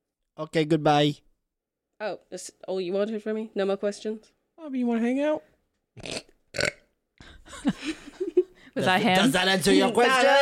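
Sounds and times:
speech: 0:00.4 - 0:01.2, 0:02.0 - 0:06.2, 0:08.8 - 0:10.4
person burping: 0:06.0 - 0:06.9.

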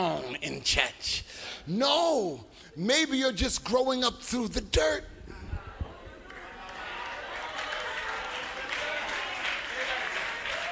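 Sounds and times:
speech: 0:00.6 - 0:05.1
audience in a church applauding: 0:06.2 - 0:10.7.

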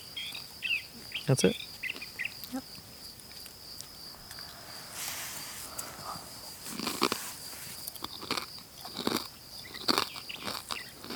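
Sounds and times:
faint steady hiss: 0:00.0 - 0:08.9
speech: 0:01.3 - 0:01.7
person biting and chewing a potato chip: 0:06.7 - 0:07.2, 0:07.8 - 0:11.1.

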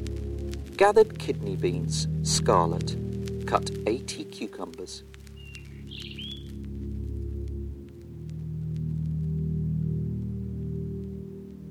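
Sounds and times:
loud steady low rumble: 0:00.0 - 0:11.7
speech: 0:00.8 - 0:05.2
robin singing: 0:03.8 - 0:06.6.

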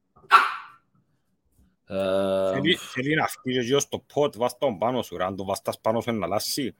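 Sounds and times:
single short dog bark: 0:00.3 - 0:00.8
speech: 0:01.9 - 0:06.7.

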